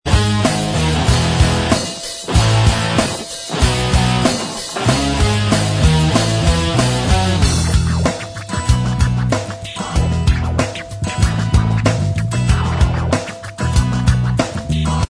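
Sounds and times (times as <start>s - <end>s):
instrumental backing track: 0.1s - 15.0s.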